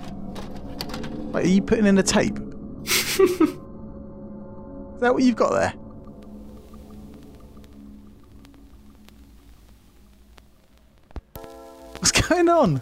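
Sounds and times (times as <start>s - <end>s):
steady low hum: 0.0s - 12.0s
sustained tone: 0.0s - 12.7s
speech: 1.4s - 2.5s, 3.2s - 3.6s, 5.0s - 5.8s, 12.5s - 12.7s
laughter: 2.9s - 3.6s
vinyl record crackle: 5.4s - 12.7s.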